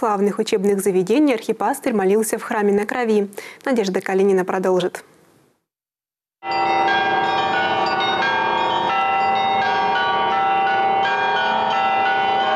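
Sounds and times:
speech: 0.0 - 5.1
church bells of the Church on the Blood in Yekaterinburg ringing: 6.4 - 12.5.

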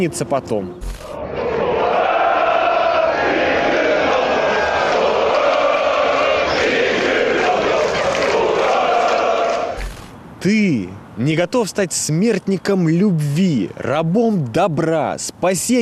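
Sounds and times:
speech: 0.0 - 0.9, 10.4 - 15.7
large crowd shouting and cheering: 1.0 - 9.8.

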